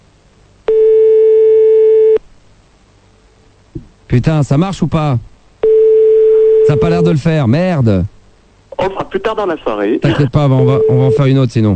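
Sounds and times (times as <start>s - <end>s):
outgoing phone call electronic telephone tone: 0.7s - 2.2s, 5.6s - 7.2s, 10.6s - 11.4s
speech: 4.1s - 5.3s, 6.7s - 8.1s, 8.8s - 11.7s.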